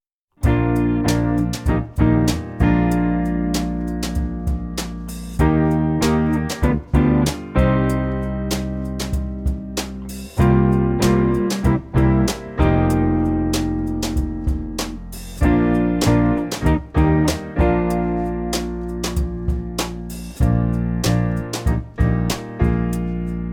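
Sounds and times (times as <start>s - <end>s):
guitar play-along for a tempo and rhythm exercise: 0.4s - 23.4s.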